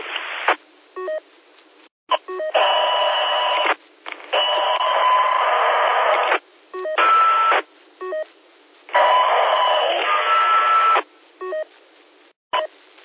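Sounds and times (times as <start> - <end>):
hissy two-way radio static: 0.0 - 0.7, 3.0 - 13.0
brief radio tones and clicks: 2.1 - 11.8
two-way radio transmission bursts: 9.0 - 11.0.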